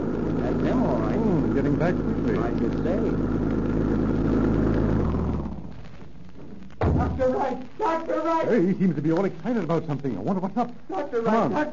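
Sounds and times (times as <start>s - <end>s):
car approaching and pulling up: 0.0s - 5.9s
speech: 1.6s - 3.6s, 7.5s - 11.7s.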